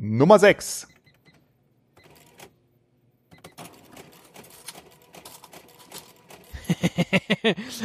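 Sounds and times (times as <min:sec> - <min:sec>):
speech: 0:00.0 - 0:00.9, 0:06.9 - 0:07.8
modern cash register whirring and clicking: 0:01.0 - 0:02.6, 0:03.3 - 0:06.6
cash register receipt printer buzzing: 0:02.0 - 0:02.5, 0:03.3 - 0:06.6
laughter: 0:06.5 - 0:07.8.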